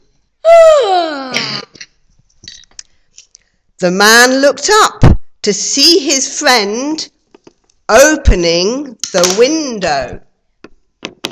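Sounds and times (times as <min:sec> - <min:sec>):
person yawning loudly: 0:00.4 - 0:01.7
speech: 0:03.8 - 0:07.2, 0:07.9 - 0:10.3.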